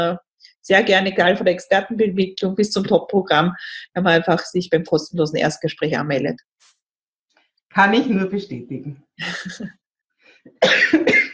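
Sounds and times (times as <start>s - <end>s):
speech: 0.0s - 6.7s, 7.7s - 9.8s, 10.4s - 11.3s
coughing from a scratchy throat: 10.5s - 11.3s.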